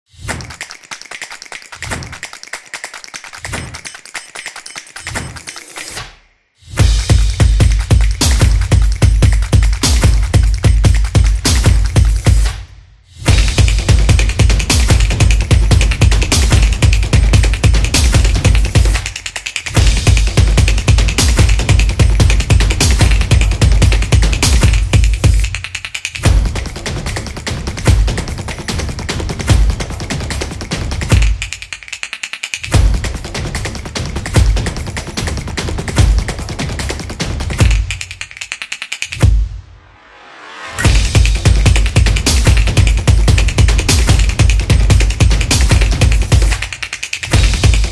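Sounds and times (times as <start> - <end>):
percussion solo: 0.1 - 12.6, 13.2 - 39.6, 40.7 - 47.8.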